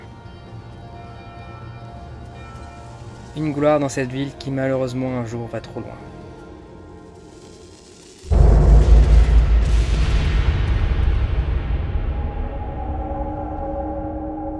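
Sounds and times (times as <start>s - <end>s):
speech: 3.4s - 6.2s
huge explosion in a gold mine: 8.3s - 14.5s.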